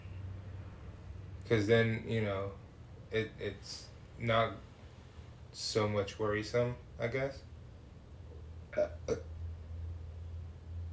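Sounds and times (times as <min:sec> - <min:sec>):
steady low hum: 0:00.0 - 0:10.9
speech: 0:01.5 - 0:04.7, 0:05.5 - 0:07.5, 0:08.8 - 0:09.3
loud burps: 0:08.7 - 0:09.3.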